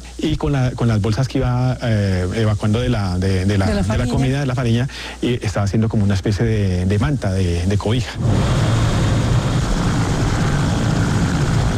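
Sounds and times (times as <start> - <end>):
speech: 0.2 - 8.8
helicopters flying overhead: 8.7 - 11.7.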